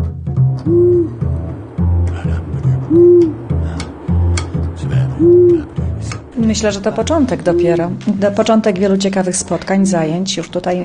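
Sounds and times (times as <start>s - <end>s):
speech: 0.6s - 1.2s, 6.5s - 10.8s
tawny owls hooting: 0.6s - 8.2s.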